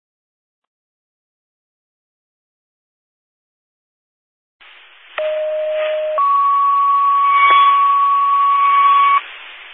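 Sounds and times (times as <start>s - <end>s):
hissy radio channel: 4.6s - 9.7s
electronic fire dispatch paging tones: 5.2s - 9.2s.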